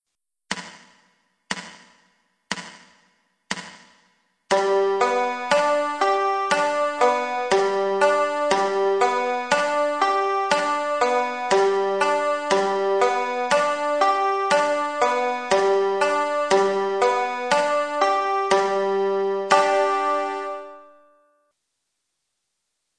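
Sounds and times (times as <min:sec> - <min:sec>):
banjo played forward and reversed: 0:04.5 - 0:20.9.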